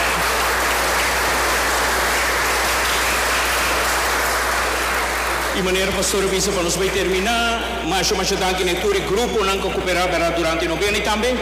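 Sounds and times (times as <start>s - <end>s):
audience applause: 0.0s - 7.3s
speech: 5.6s - 11.3s.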